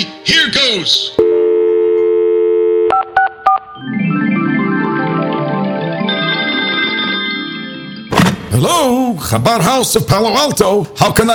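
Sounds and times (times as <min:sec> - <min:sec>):
speech: 0:00.3 - 0:01.2, 0:08.6 - 0:11.3
steady cell phone tone: 0:01.2 - 0:03.8
bright melodic electronic ringing tune: 0:01.2 - 0:08.1.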